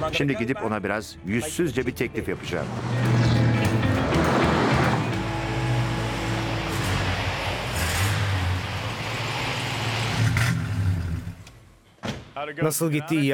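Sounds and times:
speech: 0.1 - 3.2, 12.5 - 13.3
Hemi V8 car engine revving: 2.2 - 11.7.

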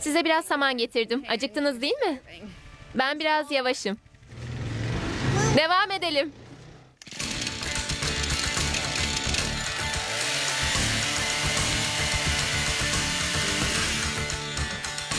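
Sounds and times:
speech: 0.0 - 4.1, 5.6 - 6.4
chainsaw cutting through wood: 7.0 - 15.1.

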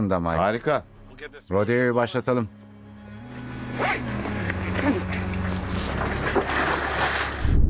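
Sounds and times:
speech: 0.0 - 2.6
boat engine hum: 2.5 - 7.6.

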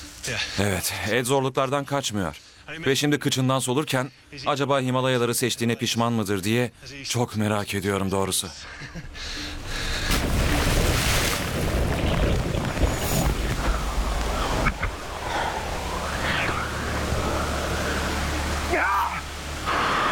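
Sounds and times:
speech: 0.2 - 9.8
rushing river by a waterfall in the Himalayas: 10.3 - 20.1.

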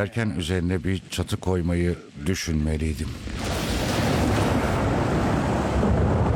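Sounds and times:
speech: 0.0 - 3.6
storm rain: 0.0 - 6.3
storm wind: 0.0 - 6.3
wind buffeting the microphone: 3.0 - 6.3.

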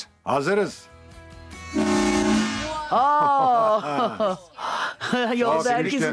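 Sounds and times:
speech: 0.2 - 0.9, 1.7 - 2.0, 2.9 - 4.5, 5.1 - 6.1
real train horn blast: 1.7 - 2.8
laughter: 2.8 - 6.1.

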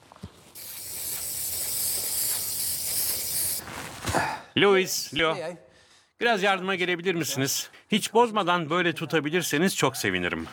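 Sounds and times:
aerosol spray hissing from an adhesive can: 0.6 - 3.6
speech: 4.6 - 5.6, 6.2 - 10.5.

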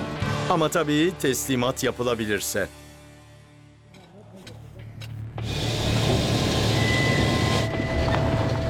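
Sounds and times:
speech: 0.5 - 2.8
heavily loaded truck engine rumbling under load: 4.5 - 8.6.

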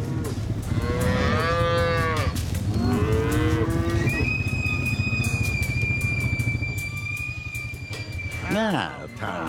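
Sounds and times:
cattle mooing in long drawn-out calls: 0.7 - 4.3
steady low engine rumble: 1.8 - 9.4
thin sustained high-pitched squeal: 2.7 - 8.6
speech: 8.6 - 9.4.

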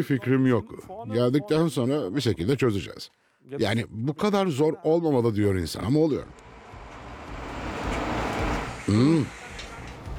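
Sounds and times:
speech: 0.0 - 6.4, 8.9 - 9.4
garbage truck engine and road rumble: 6.3 - 10.1.

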